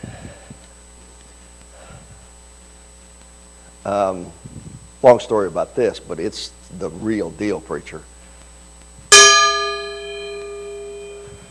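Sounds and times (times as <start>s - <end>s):
speech: 3.8s - 8.1s
Burmese gong from Chin State struck: 9.1s - 11.5s.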